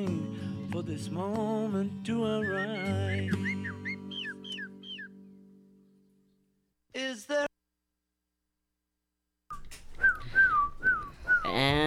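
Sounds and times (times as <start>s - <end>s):
speech: 0.0s - 3.7s
person whistling a short melodic tune along to a song: 2.3s - 5.0s, 9.5s - 11.8s.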